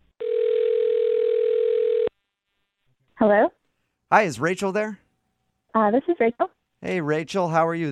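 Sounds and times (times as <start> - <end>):
steady loud phone ringback tone: 0.2 - 2.1
speech: 4.1 - 5.0, 5.7 - 7.9.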